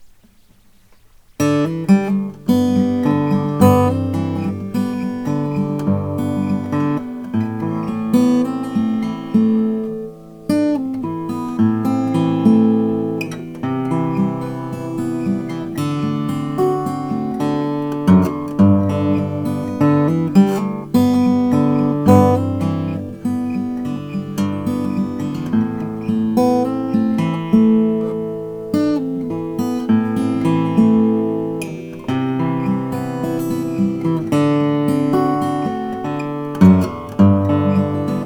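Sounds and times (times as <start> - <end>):
handmade mini grand symphony acoustic guitar: 0.0 - 38.2.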